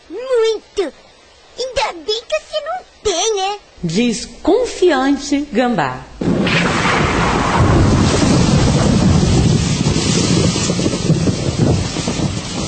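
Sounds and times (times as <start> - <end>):
heavy rain: 0.0 - 12.6
speech: 0.8 - 1.0, 3.3 - 6.1
blustery gust of cold wind: 6.2 - 12.6.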